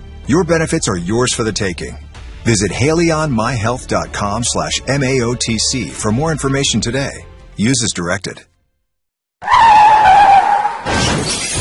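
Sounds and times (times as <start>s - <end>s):
speech: 0.3s - 8.5s
car tire screeching as car skids: 9.4s - 11.5s
harsh car crash: 9.6s - 11.5s
glass shattering: 10.8s - 11.5s.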